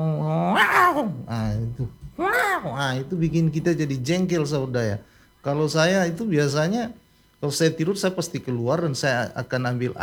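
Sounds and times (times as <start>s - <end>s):
human voice imitating fighting cats: 0.0s - 1.3s, 2.2s - 3.0s
speech: 0.0s - 10.0s.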